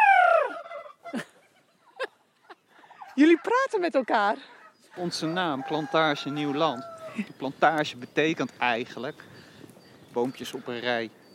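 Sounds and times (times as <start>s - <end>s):
turkey cock gobbling on a cold day: 0.0s - 7.3s
speech: 3.2s - 9.3s, 10.1s - 11.2s.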